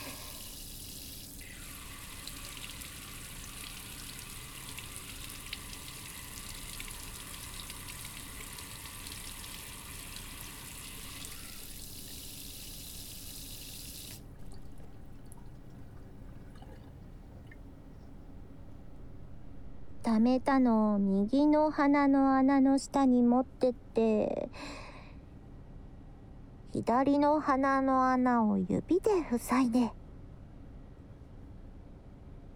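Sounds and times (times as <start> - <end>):
hot water running from a shower into a cup: 0.0 - 17.7
speech: 20.1 - 24.8, 26.8 - 30.0.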